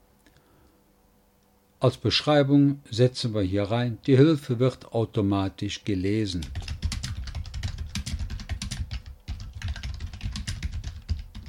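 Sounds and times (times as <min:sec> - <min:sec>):
speech: 0:01.8 - 0:06.6
typing on a computer keyboard including tab key presses: 0:06.4 - 0:11.4.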